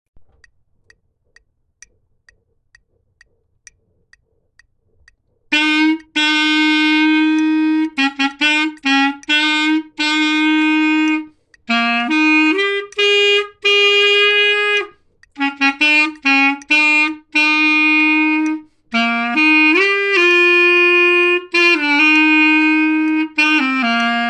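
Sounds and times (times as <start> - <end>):
boogie bass melody: 5.5 - 24.2.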